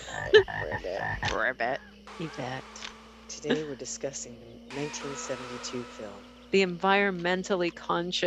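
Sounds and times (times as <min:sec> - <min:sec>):
frog croaking: 0:00.1 - 0:02.9
speech: 0:00.3 - 0:08.2.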